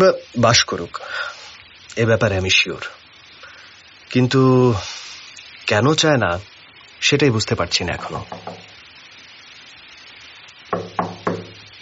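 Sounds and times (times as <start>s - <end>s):
speech: 0.0s - 1.4s, 2.0s - 3.0s, 4.1s - 5.0s, 5.7s - 8.7s
sharp solid knocks on a door: 8.3s - 8.7s, 10.7s - 11.7s.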